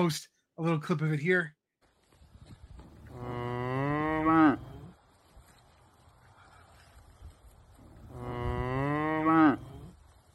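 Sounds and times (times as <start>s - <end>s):
speech: 0.0s - 1.6s
faint outdoor noise: 0.0s - 10.3s
cows mooing in a yard: 3.0s - 4.9s, 7.8s - 10.0s.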